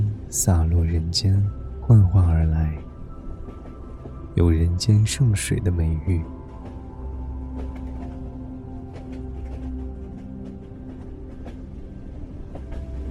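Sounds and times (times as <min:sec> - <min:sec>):
train running along the rails in the Kunlun Mountains: 0:00.0 - 0:13.0
speech: 0:00.3 - 0:02.9, 0:04.4 - 0:06.4.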